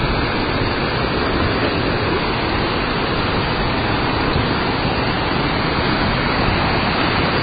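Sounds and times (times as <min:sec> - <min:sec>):
steady rushing river water: 0:00.0 - 0:07.4.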